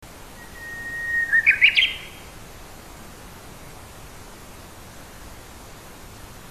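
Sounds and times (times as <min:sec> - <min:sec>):
soft hiss: 0:00.0 - 0:06.4
Japanese bush warbler song with drawn-out whistle and rippling phrase: 0:00.2 - 0:02.3.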